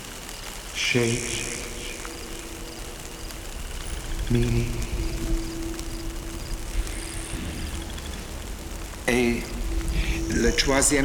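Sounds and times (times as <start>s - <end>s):
gentle rain: 0.0s - 11.0s
speech: 0.8s - 1.6s, 4.3s - 5.4s, 10.4s - 11.0s
tonal sounds: 0.8s - 11.0s.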